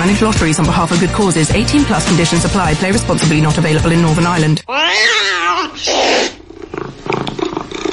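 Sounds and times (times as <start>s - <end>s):
speech: 0.0s - 6.4s
cat meowing: 4.6s - 6.4s.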